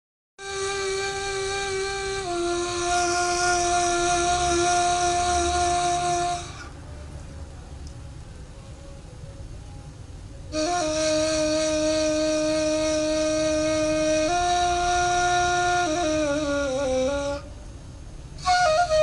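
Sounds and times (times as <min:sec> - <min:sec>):
instrumental ney music: 0:00.4 - 0:06.8, 0:10.5 - 0:19.0.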